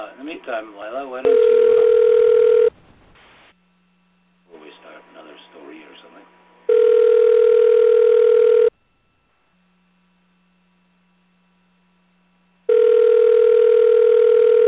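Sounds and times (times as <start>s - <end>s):
speech: 0.2s - 1.9s
phone line electronic ringback tones: 1.3s - 2.7s, 6.7s - 8.7s, 12.7s - 14.6s.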